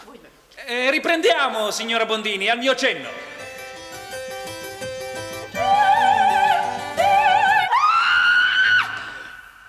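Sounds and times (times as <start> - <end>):
speech: 0.7 - 3.3
woman singing with wavering vibrato: 5.5 - 9.1
woman screaming after being pinched: 7.6 - 9.2.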